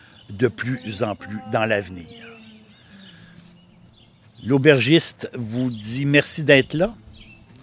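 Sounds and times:
birds singing outdoors in fine weather: 0:00.0 - 0:07.6
speech: 0:00.3 - 0:02.3, 0:04.4 - 0:07.0.

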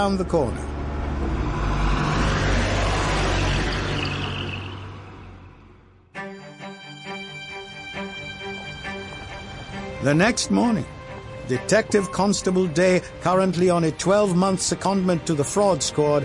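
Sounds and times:
speech: 0:00.0 - 0:00.8, 0:10.0 - 0:16.2
taxi engine and road noise driving at night: 0:00.0 - 0:06.2, 0:07.1 - 0:16.2
music: 0:06.1 - 0:16.2.

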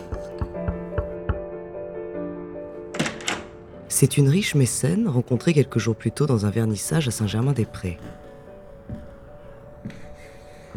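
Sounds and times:
fist knocking on a wooden door: 0:00.0 - 0:01.5
music: 0:00.0 - 0:10.7
speech: 0:03.9 - 0:08.2.

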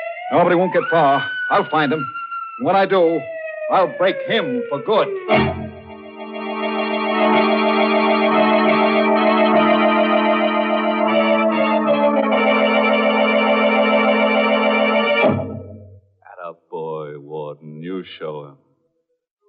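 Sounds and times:
prison escape alarm blaring: 0:00.0 - 0:16.0
speech: 0:00.3 - 0:05.6.

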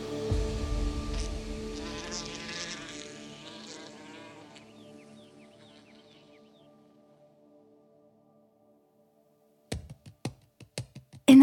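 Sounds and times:
wasp buzzing: 0:00.4 - 0:06.5.

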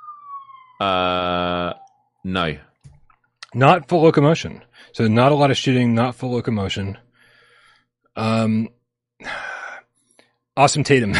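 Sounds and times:
police car siren wailing: 0:00.0 - 0:02.3
speech: 0:00.8 - 0:02.7, 0:03.5 - 0:07.0, 0:08.2 - 0:09.4, 0:10.6 - 0:11.1.

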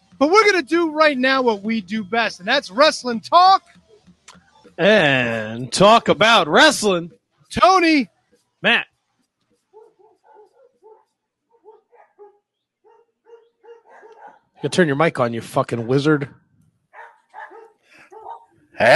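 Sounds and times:
speech: 0:00.2 - 0:03.8, 0:04.8 - 0:08.9, 0:14.6 - 0:16.4, 0:18.8 - 0:18.9
small dogs barking outside a window: 0:09.7 - 0:14.9, 0:16.9 - 0:18.6.

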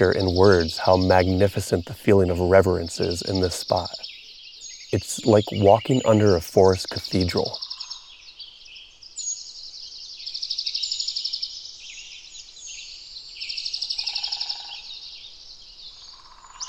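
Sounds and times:
speech: 0:00.0 - 0:04.2, 0:04.9 - 0:07.6
layered birdsong echoing in a sequoia forest: 0:00.0 - 0:16.6.

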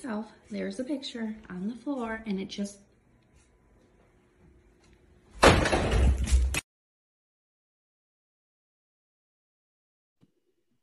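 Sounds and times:
speech: 0:00.0 - 0:02.9
door slamming: 0:05.4 - 0:06.6.

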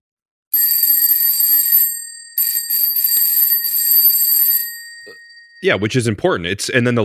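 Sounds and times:
electric bicycle bell used as doorbell ringing: 0:00.5 - 0:05.9
speech: 0:05.0 - 0:07.0.

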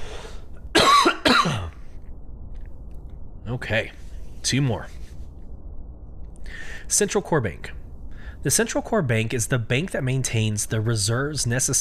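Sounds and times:
person clearing throat: 0:00.8 - 0:01.8
speech: 0:03.5 - 0:05.0, 0:06.6 - 0:07.8, 0:08.4 - 0:11.7.

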